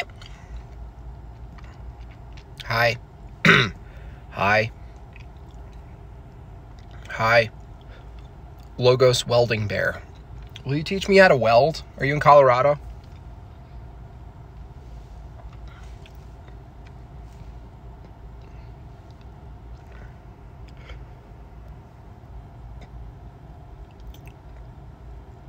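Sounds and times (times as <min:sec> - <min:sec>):
person chewing and munching pizza: 0:00.0 - 0:02.7, 0:04.8 - 0:08.7, 0:15.3 - 0:21.2, 0:23.8 - 0:24.7
low rumble: 0:00.0 - 0:25.4
speech: 0:02.6 - 0:03.8, 0:04.4 - 0:04.8, 0:07.2 - 0:07.6, 0:08.8 - 0:12.9.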